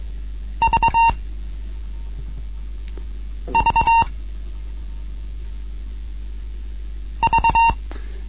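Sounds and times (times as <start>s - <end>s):
low hum: 0.0s - 8.2s
Morse code letter V beeps: 0.6s - 1.2s, 3.5s - 4.1s, 7.2s - 7.8s.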